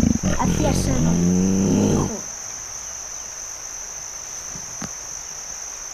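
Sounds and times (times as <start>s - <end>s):
short loud deep roar: 0.0s - 2.3s
steady high-pitched chirring of insects: 0.0s - 5.9s
speech: 0.4s - 2.2s.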